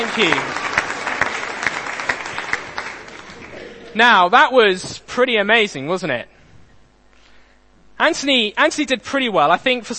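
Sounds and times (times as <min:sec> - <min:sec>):
speech: 0:00.0 - 0:00.7, 0:04.0 - 0:06.3, 0:08.0 - 0:09.9
crowd clapping for a participant: 0:00.0 - 0:03.9.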